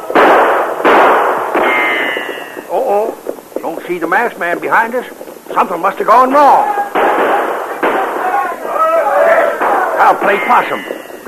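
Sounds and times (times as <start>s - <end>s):
gunshot sound effects in radio drama holdup: 0.0s - 2.7s, 5.6s - 11.2s
speech: 3.9s - 6.8s, 10.1s - 11.2s.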